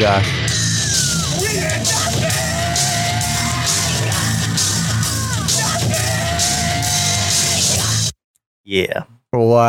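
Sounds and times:
heavy-rock jingle with pounding drums and distorted guitars: 0:00.0 - 0:08.1
recorded drawn-out screams: 0:00.6 - 0:07.8.

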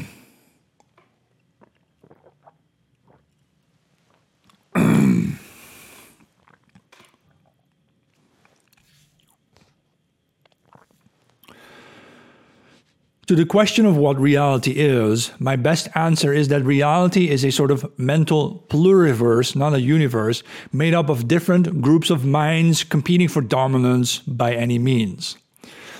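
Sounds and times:
person sipping a drink: 0:00.0 - 0:13.2
speech: 0:13.3 - 0:25.8.

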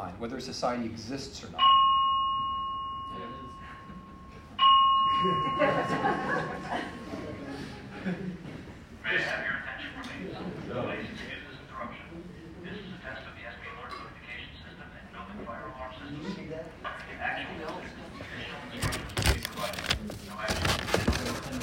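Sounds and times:
speech: 0:00.1 - 0:01.8, 0:05.2 - 0:07.0, 0:07.6 - 0:08.4, 0:09.1 - 0:09.5
thin weak bell ringing: 0:01.6 - 0:07.0
people talking and murmuring in the room: 0:03.1 - 0:21.6
laughter: 0:03.8 - 0:08.9.

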